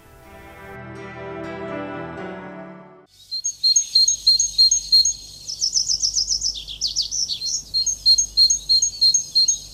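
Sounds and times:
music: 0:00.0 - 0:03.1
great tit singing: 0:03.1 - 0:09.7.

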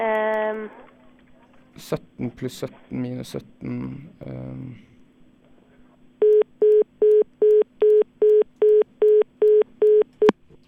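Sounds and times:
speech: 0:01.8 - 0:04.9
telephone busy tone after the other caller hangs up: 0:06.2 - 0:10.3.

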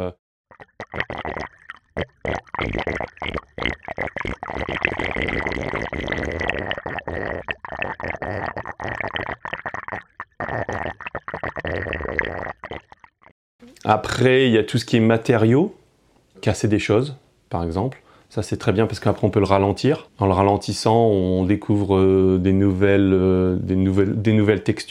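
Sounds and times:
speech: 0:00.0 - 0:00.2, 0:02.6 - 0:03.4, 0:13.9 - 0:15.8, 0:16.4 - 0:24.8
water gurgling as it drains down a sewer: 0:00.5 - 0:13.3.

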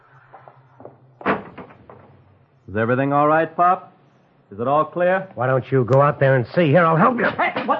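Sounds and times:
street door knocks and rattles: 0:00.8 - 0:02.2
speech: 0:02.7 - 0:03.9, 0:04.5 - 0:07.7.

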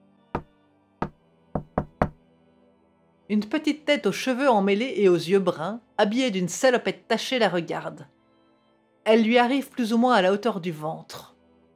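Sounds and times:
sharp knocks on a door: 0:00.4 - 0:02.2
speech: 0:03.3 - 0:08.2, 0:09.0 - 0:11.3.

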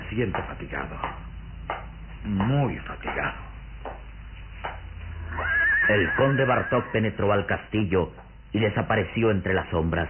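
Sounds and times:
speech: 0:00.2 - 0:01.2, 0:02.2 - 0:04.0, 0:05.9 - 0:10.0
horse neighing: 0:05.2 - 0:07.0.

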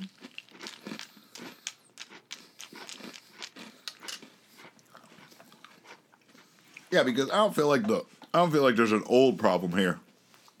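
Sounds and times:
crunching and chewing a hard crunchy candy snack: 0:00.0 - 0:06.4
speech: 0:06.9 - 0:10.0.

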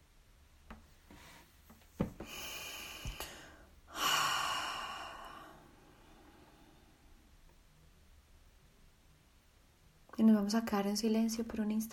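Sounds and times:
slow deep breath during a guided relaxation exercise: 0:02.1 - 0:07.4
speech: 0:10.2 - 0:11.9.

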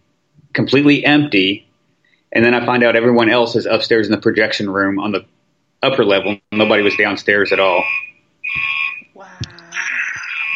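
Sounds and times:
speech: 0:00.6 - 0:01.7, 0:02.3 - 0:09.4
building fire alarm buzzing set off by a hazer: 0:06.2 - 0:09.1, 0:10.1 - 0:10.5.

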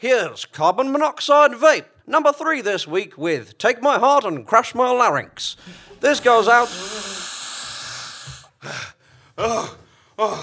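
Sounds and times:
speech: 0:00.0 - 0:07.1, 0:08.6 - 0:10.4
heavy breathless panting after running: 0:05.6 - 0:10.1.

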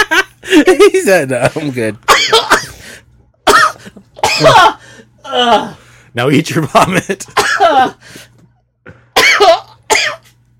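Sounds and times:
speech: 0:00.6 - 0:02.5, 0:04.4 - 0:08.3, 0:09.4 - 0:10.2
person gagging and coughing after hitting the back of the throat: 0:02.1 - 0:02.8, 0:03.4 - 0:05.8, 0:07.2 - 0:08.0, 0:09.1 - 0:10.3.

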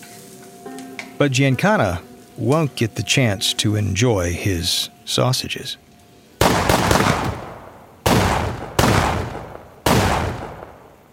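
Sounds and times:
speech: 0:01.2 - 0:05.8
.22 pistol gunshots in a suburban home: 0:06.4 - 0:11.0.

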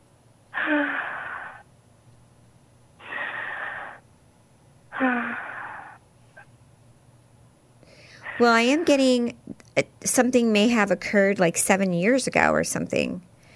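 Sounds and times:
deep breaths in and out: 0:00.6 - 0:01.7, 0:03.0 - 0:04.1, 0:04.9 - 0:06.0, 0:07.8 - 0:08.4
speech: 0:08.4 - 0:13.3.

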